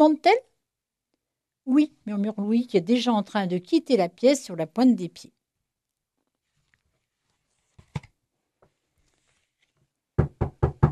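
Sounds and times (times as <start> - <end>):
speech: 0.0 - 0.5, 1.7 - 5.4
knocking on a door: 10.2 - 10.9.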